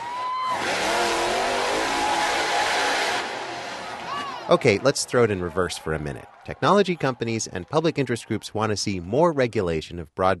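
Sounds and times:
monster truck engine revving: 0.5 - 4.1
speech: 4.5 - 10.3.

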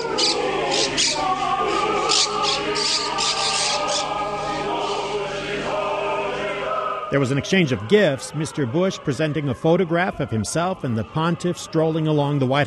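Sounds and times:
birds chirping and twittering in trees at the Vatican: 0.0 - 1.4, 2.1 - 5.2
choir of men and boys singing: 0.0 - 12.6
speech: 7.1 - 12.6.

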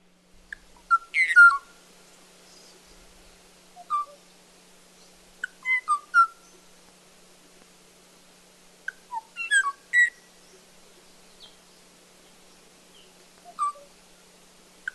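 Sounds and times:
lone songbird giving clear fluting whistled phrases: 0.5 - 1.7, 3.8 - 4.2, 5.0 - 6.6, 8.9 - 10.6, 13.0 - 13.9.

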